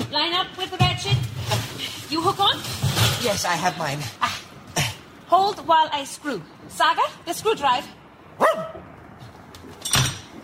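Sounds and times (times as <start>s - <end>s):
speech: 0.2s - 4.3s, 5.3s - 8.8s
dog barking: 8.4s - 8.8s.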